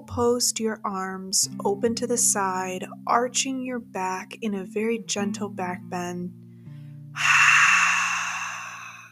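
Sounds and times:
speech: 0.2 - 6.4, 7.2 - 7.4
open-mouth exhale during a yoga back bend: 7.2 - 9.1.

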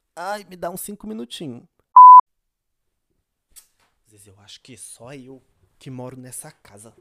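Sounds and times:
speech: 0.2 - 1.7, 4.1 - 6.9
electronic telephone tone from an incoming telemarketing collection call: 2.0 - 2.2.

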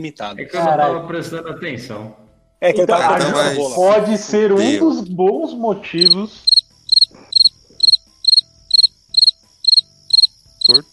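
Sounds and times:
speech: 0.0 - 6.5, 10.7 - 10.9
cricket chirping: 6.0 - 10.9.

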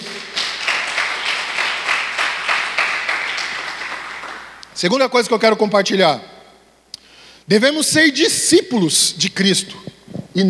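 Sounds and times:
audience applauding: 0.0 - 4.6
speech: 4.8 - 6.3, 7.5 - 10.4.

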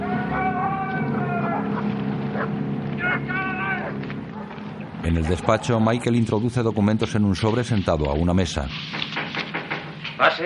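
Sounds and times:
motorboat engine droning along a lake shore: 0.0 - 6.6
speech: 5.0 - 9.2, 10.2 - 10.4.

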